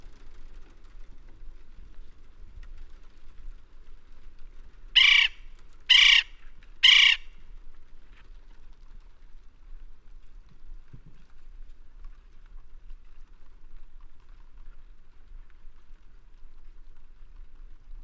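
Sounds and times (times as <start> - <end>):
West Indian woodpecker giving loud harsh raspy calls: 5.0 - 7.4.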